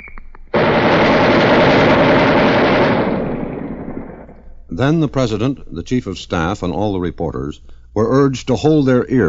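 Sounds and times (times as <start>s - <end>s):
twin-barrel machine gun firing 20 millimeter rounds at a weapons demonstration: 0.5s - 4.5s
speech: 4.8s - 9.2s.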